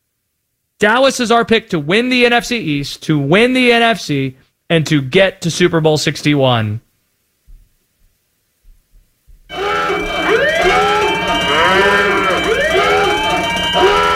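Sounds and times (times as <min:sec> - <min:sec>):
speech: 0:00.8 - 0:06.8
soft low thumps: 0:07.4 - 0:09.5
wailing sirens of a hot-take alarm sound effect: 0:09.5 - 0:14.1.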